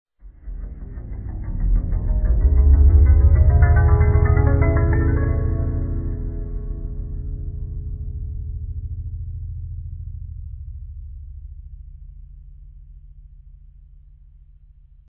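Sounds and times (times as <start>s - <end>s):
harp: 0.8s - 8.6s.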